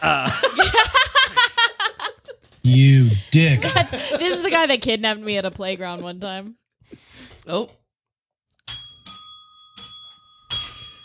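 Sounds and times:
speech: 0:00.0 - 0:00.8, 0:02.7 - 0:07.8
bells ringing: 0:08.6 - 0:11.0.

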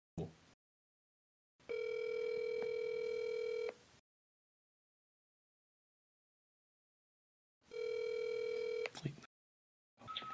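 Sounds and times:
telephone ringing in electronic tone bursts over a call line: 0:01.6 - 0:03.8, 0:07.7 - 0:08.9.

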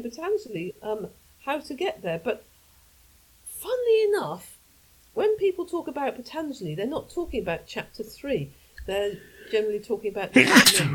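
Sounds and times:
speech: 0:00.0 - 0:02.5, 0:03.6 - 0:04.6, 0:05.2 - 0:10.9
loud sneeze: 0:10.4 - 0:10.9.

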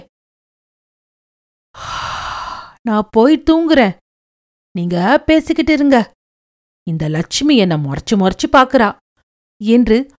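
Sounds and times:
person imitating a sleepy woman yawning: 0:01.8 - 0:02.8
speech: 0:02.8 - 0:04.0, 0:04.8 - 0:06.2, 0:06.9 - 0:09.0, 0:09.6 - 0:10.1.

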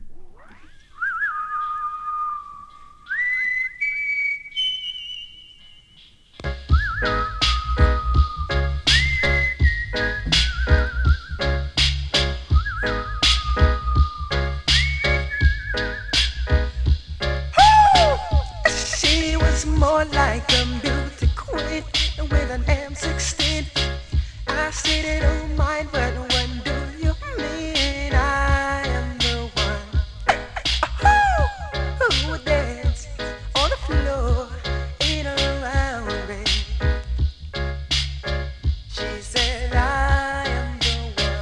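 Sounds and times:
whistled melody: 0:00.4 - 0:21.0, 0:28.8 - 0:33.8
music track with a heavy, steady beat played from a record: 0:06.1 - 0:41.4.

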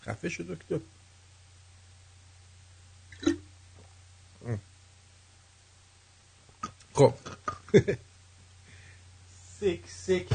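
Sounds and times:
speech: 0:00.0 - 0:01.0, 0:07.0 - 0:08.0, 0:09.6 - 0:10.3
quiet steady low hum: 0:00.0 - 0:10.3
sharp hiccups: 0:03.1 - 0:03.5.

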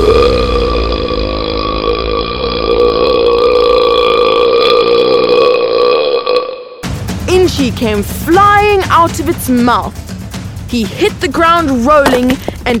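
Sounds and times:
long loud belch: 0:00.0 - 0:06.8
speech: 0:07.6 - 0:10.0, 0:10.7 - 0:12.7.

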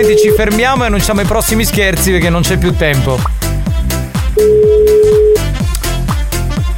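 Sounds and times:
speech: 0:00.0 - 0:03.5, 0:04.4 - 0:04.8
loud thumping music with punchy bass drops and drum hits: 0:00.0 - 0:06.7
telephone ring tone from an outgoing phone call: 0:04.4 - 0:05.5.

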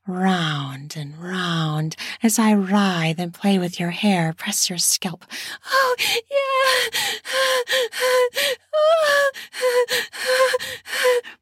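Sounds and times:
speech: 0:00.1 - 0:11.3
woman panting heavily with voiced gasping breaths: 0:05.4 - 0:11.3.

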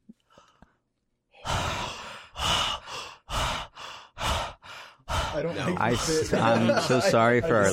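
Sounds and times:
two people breathing heavily and theatrically together: 0:01.4 - 0:07.1
speech: 0:05.4 - 0:07.7
laughter: 0:05.6 - 0:07.7.

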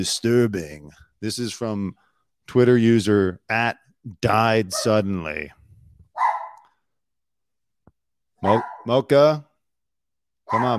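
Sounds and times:
speech: 0:00.0 - 0:05.6, 0:08.4 - 0:09.5, 0:10.5 - 0:10.7
single sharp dog bark: 0:04.7 - 0:05.0, 0:06.1 - 0:06.7, 0:08.4 - 0:08.9, 0:10.5 - 0:10.7.

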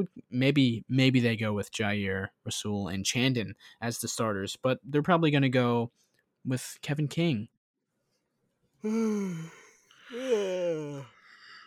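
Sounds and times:
speech: 0:00.0 - 0:07.5, 0:08.8 - 0:11.2
human yawn with a voiced sliding tone: 0:08.8 - 0:11.2.

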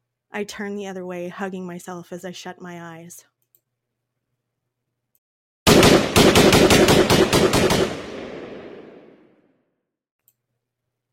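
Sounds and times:
speech: 0:00.4 - 0:03.3
rapid automatic gunfire with reverberation: 0:05.7 - 0:09.2.

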